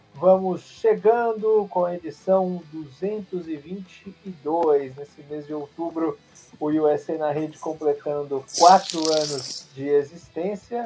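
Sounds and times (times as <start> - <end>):
speech: 0.2 - 10.8
soda can opening and fizzing: 8.5 - 9.7.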